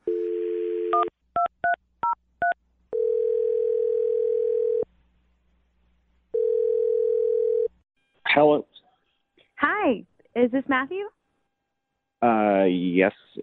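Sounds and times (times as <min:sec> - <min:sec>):
dial tone: 0:00.0 - 0:01.1, 0:03.0 - 0:04.8, 0:06.4 - 0:07.7
speech: 0:08.4 - 0:08.7, 0:09.9 - 0:11.1, 0:12.2 - 0:13.4.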